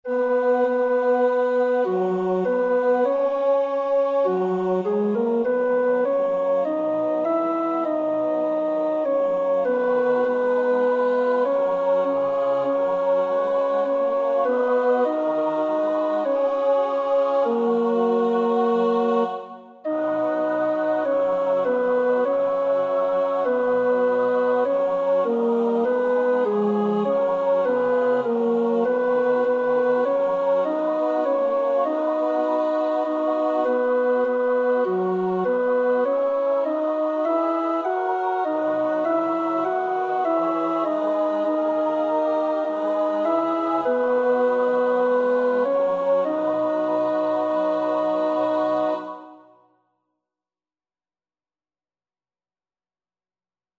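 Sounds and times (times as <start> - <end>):
tenor voice singing a choir part for practice: 0.1 - 49.5.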